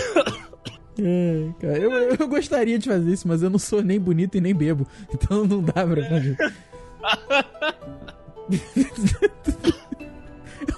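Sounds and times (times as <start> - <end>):
person coughing: 0.0 - 0.9, 8.0 - 10.7
speech: 1.0 - 9.6
laughter: 5.5 - 10.7.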